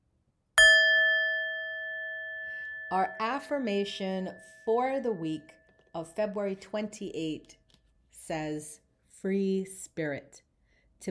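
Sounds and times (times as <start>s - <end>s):
single bright bell struck: 0.6s - 5.9s
speech: 2.9s - 11.0s.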